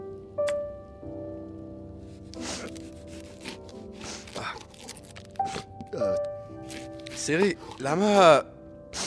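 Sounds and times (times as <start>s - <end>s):
onion being cut or peeled: 2.3s - 5.8s, 6.6s - 7.9s
speech: 7.2s - 8.5s.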